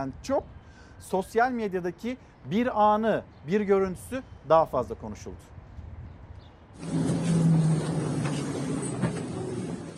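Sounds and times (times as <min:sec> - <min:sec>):
speech: 0:00.0 - 0:05.6, 0:06.8 - 0:07.1
commuter train carriage rumbling in motion: 0:06.8 - 0:09.9
clacks from the rails: 0:06.9 - 0:09.9.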